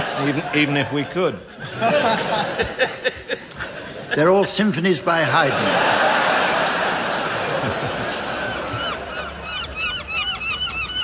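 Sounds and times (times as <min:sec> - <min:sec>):
laughter: 0:00.0 - 0:09.9
speech: 0:00.2 - 0:06.2
crowd of seagulls calling: 0:07.8 - 0:11.0.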